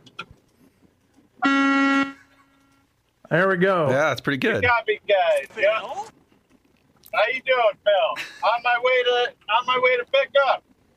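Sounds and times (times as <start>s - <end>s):
low rumble: 0.0s - 10.9s
big truck horn blast: 1.4s - 2.3s
speech: 3.3s - 6.2s, 7.1s - 10.7s.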